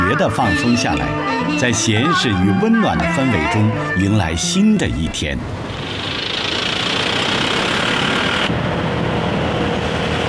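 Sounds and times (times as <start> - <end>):
speech: 0.1 - 6.2
many motorcycle engines on a national highway in Wuzhou Guangxi China: 4.5 - 10.2.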